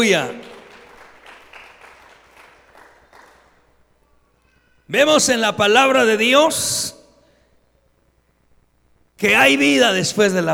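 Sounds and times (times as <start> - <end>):
speech: 0.0 - 0.5, 4.9 - 7.0, 9.2 - 10.5
congregation applauding: 0.0 - 4.0.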